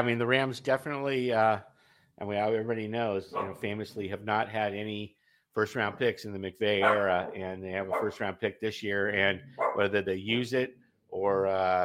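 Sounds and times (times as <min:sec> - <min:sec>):
speech: 0:00.0 - 0:11.8
dogs barking in the background: 0:03.3 - 0:03.7, 0:06.8 - 0:08.3, 0:09.5 - 0:10.0.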